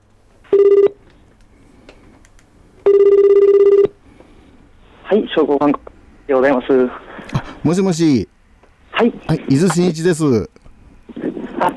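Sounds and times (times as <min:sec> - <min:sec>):
telephone ringing with a buzzing electronic tone: 0:00.5 - 0:01.0, 0:02.9 - 0:03.9
speech: 0:05.1 - 0:07.0, 0:07.6 - 0:08.3, 0:09.0 - 0:10.5.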